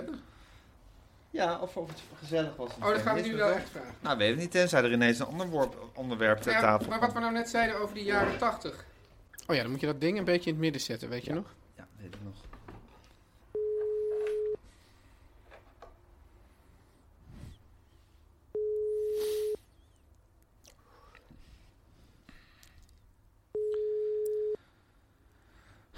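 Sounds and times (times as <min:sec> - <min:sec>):
speech: 0:01.4 - 0:08.9, 0:09.5 - 0:12.5
phone ringback tone of an unanswered call: 0:13.5 - 0:14.6, 0:18.5 - 0:19.6, 0:23.5 - 0:24.6.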